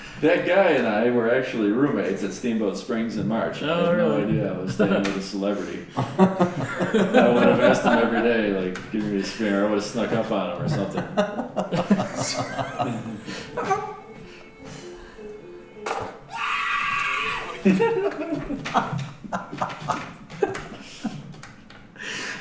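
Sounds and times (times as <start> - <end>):
speech: 0.2 - 13.9, 17.6 - 19.7
people chuckling: 3.6 - 22.4
man screaming in fright: 16.3 - 17.6.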